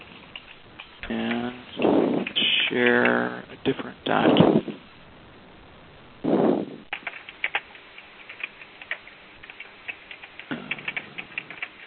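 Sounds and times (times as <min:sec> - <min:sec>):
keystrokes on a computer keyboard: 0:00.0 - 0:03.2, 0:06.9 - 0:11.8
rush of noise: 0:01.6 - 0:02.8, 0:04.2 - 0:06.9
speech: 0:02.7 - 0:04.7.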